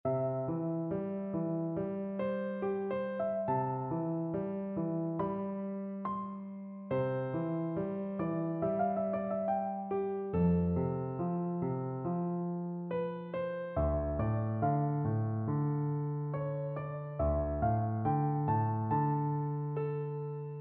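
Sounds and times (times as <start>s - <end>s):
meditation piano music: 0.1s - 20.5s.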